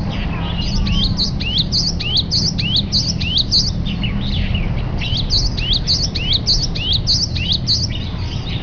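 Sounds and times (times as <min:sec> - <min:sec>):
great tit calling: 0:00.0 - 0:08.6
low rumbling background noise: 0:00.0 - 0:08.6.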